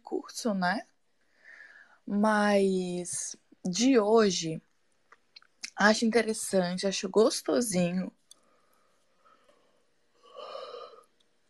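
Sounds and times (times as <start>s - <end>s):
speech: 0.1s - 0.9s, 2.1s - 4.7s, 5.8s - 8.2s
yawn: 10.2s - 11.1s.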